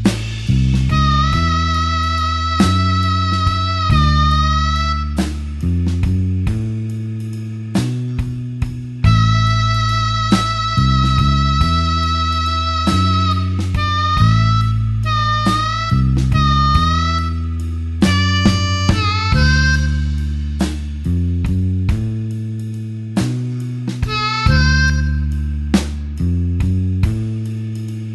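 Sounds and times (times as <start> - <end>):
slow blues harmonica in A: 0.1 - 27.9.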